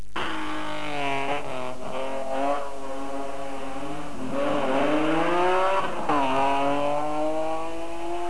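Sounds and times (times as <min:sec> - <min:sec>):
BMW M3 Group N race car engine: 0:00.0 - 0:08.2.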